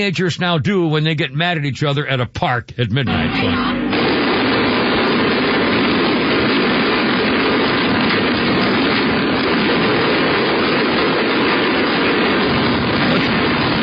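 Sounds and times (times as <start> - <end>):
speech: 0.0 - 3.8
loud heavily distorted gunfire on low-quality security camera microphone: 3.0 - 13.8.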